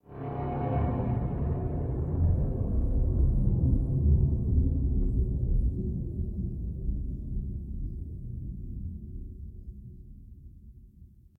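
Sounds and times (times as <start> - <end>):
dark ambient drone: 0.0 - 7.2.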